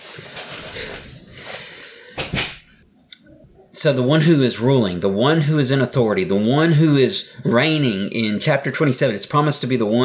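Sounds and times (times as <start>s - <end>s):
rustling and shuffling movement: 0.0s - 2.8s
speech: 3.8s - 10.0s.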